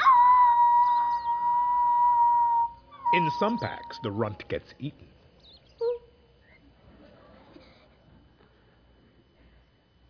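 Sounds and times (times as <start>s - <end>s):
person imitating a wolf howl: 0.0s - 4.4s
speech: 3.1s - 5.1s.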